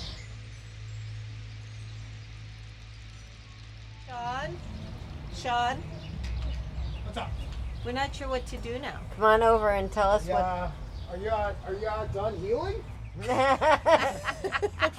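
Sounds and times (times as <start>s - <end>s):
bird chirping: 0.0s - 13.5s
faint outdoor background: 0.0s - 14.9s
steady low hum: 0.0s - 14.9s
speech: 4.1s - 4.8s, 5.4s - 6.0s, 7.1s - 14.9s
laughter: 13.2s - 14.9s.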